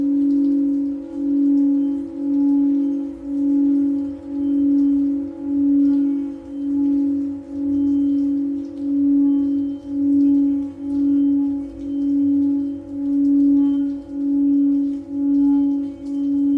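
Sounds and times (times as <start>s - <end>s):
Tibetan singing bowl sustained mid-pitched tone: 0.0s - 16.5s.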